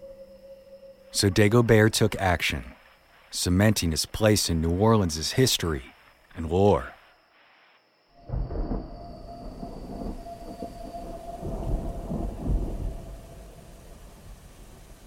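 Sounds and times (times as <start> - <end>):
speech: 1.2 - 2.7, 3.3 - 7.0
steady rain on a night in New Orleans: 7.4 - 15.0
deep rolling thunder on a rainy night in New Orleans: 8.2 - 15.0.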